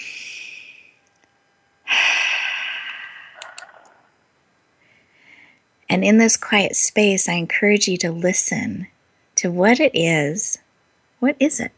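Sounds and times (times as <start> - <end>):
slow deep breath during a guided relaxation exercise: 0.0 - 0.9, 1.9 - 4.0, 4.8 - 5.6
speech: 5.9 - 10.6, 11.2 - 11.7.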